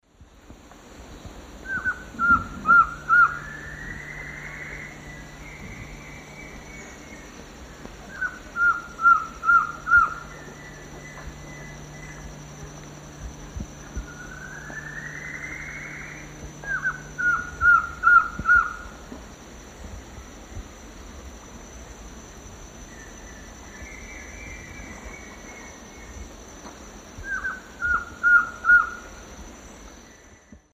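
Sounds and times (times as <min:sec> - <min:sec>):
Trogon collaris song in South American eastern lowlands: 0:01.6 - 0:12.6, 0:13.5 - 0:19.0, 0:22.8 - 0:26.4, 0:27.2 - 0:30.7.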